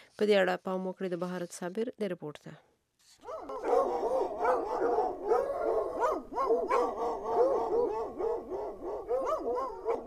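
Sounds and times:
speech: 0.2s - 3.6s
stray dogs barking in the streets of Kabul: 3.2s - 10.0s.

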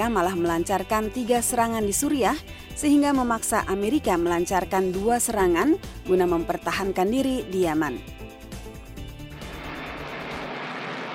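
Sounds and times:
speech: 0.0s - 8.2s
B-1 bomber aircraft jet engine roar: 9.4s - 11.1s.

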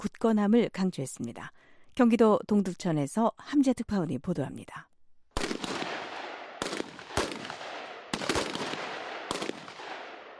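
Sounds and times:
speech: 0.0s - 4.9s
gunshots at a military base during a soldiers' competition in South Korea: 5.4s - 10.3s.

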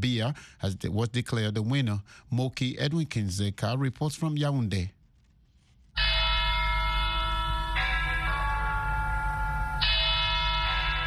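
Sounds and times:
speech: 0.0s - 5.0s
church bells ringing at a cathedral in Yaoundé Cameroon for mass: 6.0s - 11.0s.

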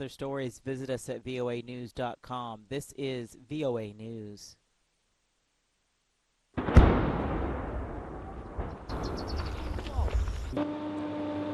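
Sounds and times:
speech: 0.0s - 4.6s, 10.5s - 10.8s
heavy boom from explosions in the Zaporizhzhia region of Ukraine: 6.6s - 10.6s
steady engine hum: 8.9s - 11.5s.

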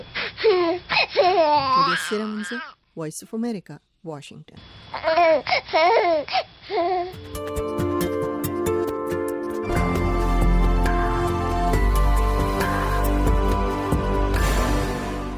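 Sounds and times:
baby crying: 0.0s - 2.8s, 4.9s - 7.2s
speech: 1.1s - 7.7s
instrumental music: 7.2s - 15.3s.

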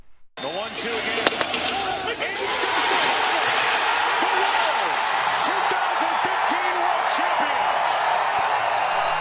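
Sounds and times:
stadium crowd cheering at a baseball World Series win: 0.4s - 9.1s
people clapping in a stadium: 2.8s - 9.1s.

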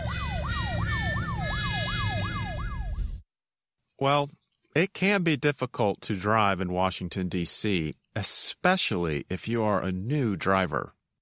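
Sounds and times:
police car siren wailing: 0.0s - 3.2s
speech: 4.0s - 11.0s.

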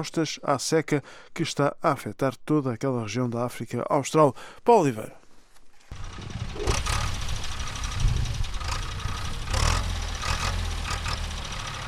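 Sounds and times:
speech: 0.0s - 5.2s
tractor engine preparing farmland: 5.9s - 11.8s.

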